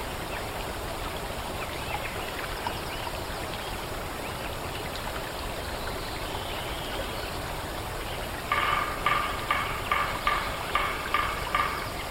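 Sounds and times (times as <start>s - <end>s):
steady rush of flowing water in a forest a year after logging: 0.0s - 12.1s
bird-like call in short bursts: 8.5s - 12.1s.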